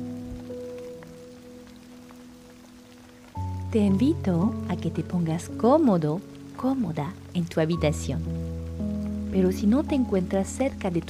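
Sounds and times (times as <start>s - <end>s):
steady rain falling: 0.0s - 11.0s
speech: 3.7s - 8.5s, 9.3s - 11.0s.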